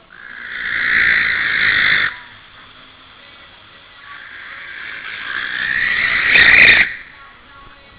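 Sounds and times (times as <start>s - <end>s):
adult Tyto alba barn owl: 0.0s - 2.8s, 4.0s - 7.2s.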